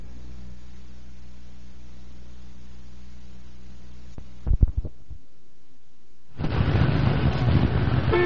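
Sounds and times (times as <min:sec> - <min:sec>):
low thumps: 0:04.2 - 0:05.2
traffic jam roar with rumbling engines: 0:06.4 - 0:08.2
car horns honking in a traffic jam: 0:08.1 - 0:08.2.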